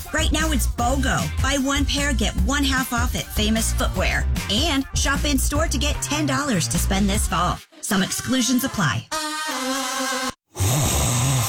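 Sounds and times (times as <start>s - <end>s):
speech: 0.2s - 9.3s
person snoring loudly: 10.5s - 11.4s.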